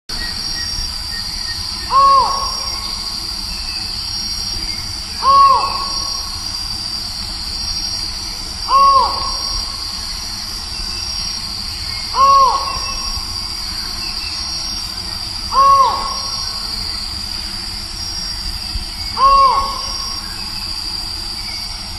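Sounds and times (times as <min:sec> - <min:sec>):
Micrastur semitorquatus calling: 0:01.6 - 0:03.8, 0:05.1 - 0:06.6, 0:08.6 - 0:10.2, 0:11.8 - 0:17.1, 0:19.0 - 0:20.6.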